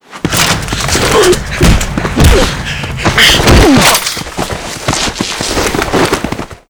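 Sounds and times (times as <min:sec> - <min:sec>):
melee struggle: 0:00.2 - 0:05.1.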